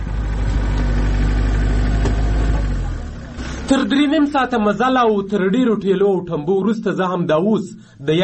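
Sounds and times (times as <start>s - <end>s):
four-wheel-drive car engine droning on a blocked road: 0.0s - 5.5s
speech: 3.7s - 8.2s.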